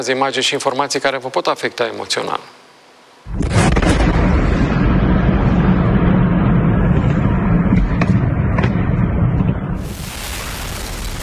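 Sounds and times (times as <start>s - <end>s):
speech: 0.0s - 2.7s, 3.3s - 3.8s
crackling bursts and secondary pops of exploding weapons depot: 3.2s - 11.2s
weapons depot explosion after missile strike: 3.3s - 11.2s.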